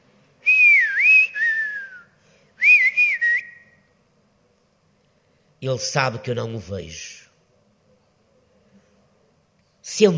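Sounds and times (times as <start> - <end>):
man whistling a melody by a river between two cornfields: 0.4 - 3.8
speech: 5.6 - 7.2, 10.0 - 10.1.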